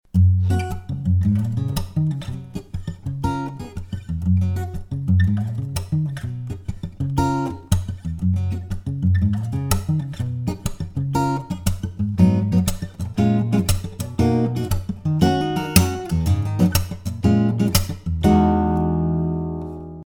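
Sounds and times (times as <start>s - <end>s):
cedar top guitar: 0.1s - 20.0s.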